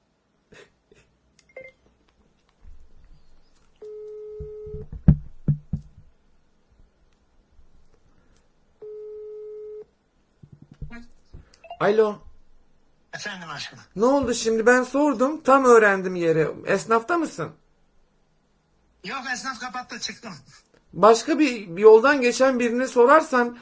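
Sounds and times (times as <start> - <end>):
knocks and rustling: 2.6 - 3.7, 4.4 - 6.2, 10.4 - 11.5
phone ringback tone: 3.8 - 4.9, 8.8 - 9.8
speech: 11.8 - 12.2, 13.2 - 17.6, 19.0 - 23.6.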